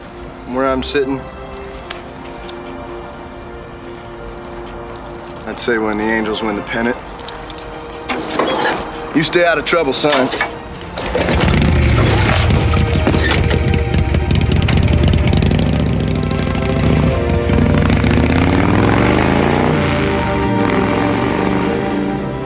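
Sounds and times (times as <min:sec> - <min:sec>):
speech: 0:00.5 - 0:01.4, 0:05.5 - 0:07.1, 0:09.2 - 0:11.3
motorcycle engine revving as it pulls off: 0:11.0 - 0:22.3.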